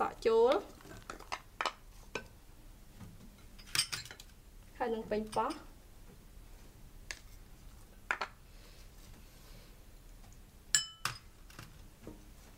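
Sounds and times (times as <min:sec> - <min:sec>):
speech: 0:00.0 - 0:00.7, 0:04.9 - 0:05.7
utensils clinking against a pot or pan while stirring vegetables: 0:03.5 - 0:04.3, 0:05.2 - 0:05.7, 0:10.7 - 0:11.3.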